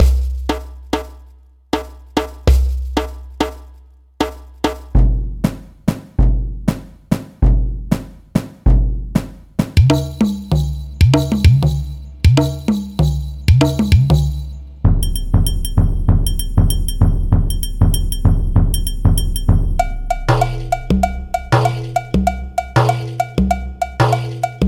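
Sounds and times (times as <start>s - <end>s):
SPD30 electronic percussion pad: 0.0s - 24.6s.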